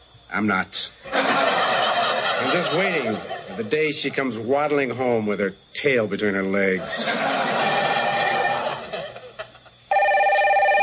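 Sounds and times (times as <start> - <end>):
speech: 0.3 - 1.5, 2.4 - 7.6
laughter: 1.1 - 3.9, 6.7 - 9.9
telephone bell ringing: 9.9 - 10.8.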